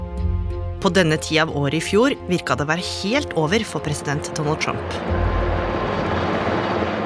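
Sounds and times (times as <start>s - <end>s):
speech: 0.8s - 5.5s
helicopter leaving the White House with heavy steady engine drone: 4.2s - 7.0s.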